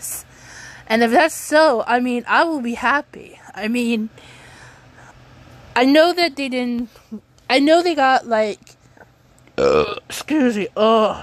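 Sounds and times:
speech: 0.9s - 4.4s, 5.8s - 8.7s, 9.6s - 11.2s
man belching with a throaty tonal rumble: 9.6s - 10.1s.

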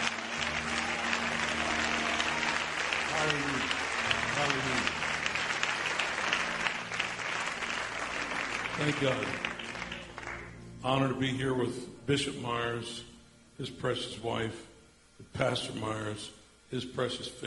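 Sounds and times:
congregation clapping: 0.0s - 10.7s
speech: 4.4s - 5.0s, 8.8s - 9.6s, 10.8s - 14.7s, 15.3s - 17.4s.

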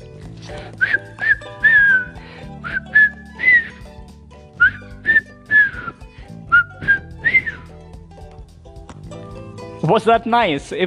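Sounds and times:
cheerful whistled melody: 0.0s - 8.2s
steady instrumental backing music: 0.0s - 10.8s
speech: 9.9s - 10.8s.

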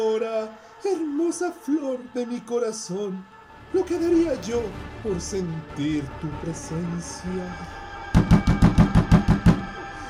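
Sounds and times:
speech: 0.0s - 7.8s
solid knocks on a wooden door: 8.2s - 9.7s.

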